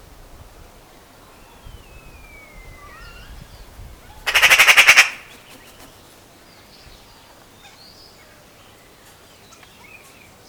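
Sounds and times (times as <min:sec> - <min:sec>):
Eurasian magpie giving a harsh rattling chatter: 0:04.2 - 0:06.1.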